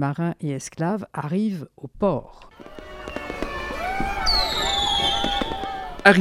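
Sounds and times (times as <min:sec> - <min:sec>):
speech: 0:00.0 - 0:02.8, 0:06.0 - 0:06.2
celebration noise in Charlestown: 0:02.5 - 0:06.2
fireworks popping and crackling in Charlestown: 0:02.5 - 0:06.2
high whistling tones of fireworks: 0:02.8 - 0:06.0.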